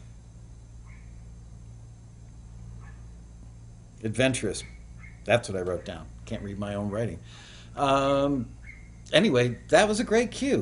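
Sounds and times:
low hum: 0:00.0 - 0:10.6
Pomeranian yapping outdoors: 0:00.8 - 0:01.2, 0:02.8 - 0:03.1, 0:04.6 - 0:05.9, 0:08.6 - 0:08.9
speech: 0:04.0 - 0:10.6.

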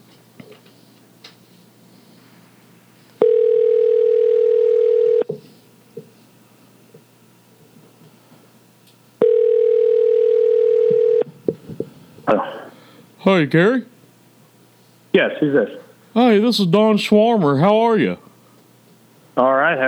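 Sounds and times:
telephone line tone as a call is placed: 0:03.2 - 0:05.4, 0:09.2 - 0:11.3
speech: 0:13.3 - 0:13.9, 0:15.2 - 0:18.3, 0:19.4 - 0:19.8.

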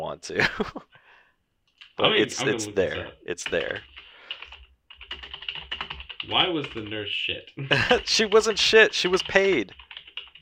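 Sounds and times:
speech: 0:00.2 - 0:01.0, 0:02.0 - 0:04.0, 0:06.3 - 0:09.8
typing on a computer keyboard: 0:03.4 - 0:07.0, 0:08.2 - 0:10.3
laughter: 0:07.6 - 0:08.2.

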